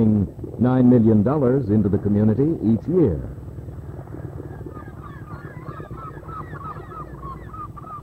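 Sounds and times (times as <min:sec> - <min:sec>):
speech: 0:00.0 - 0:03.4
steady low engine rumble: 0:00.0 - 0:08.0
flock of seagulls squawking around a fishing boat: 0:04.0 - 0:08.0.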